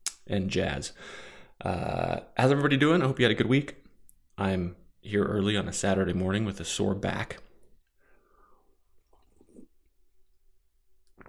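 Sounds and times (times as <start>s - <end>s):
speech: 0.3s - 3.8s, 4.4s - 7.5s
quiet slurping sip of hot coffee: 9.0s - 9.8s.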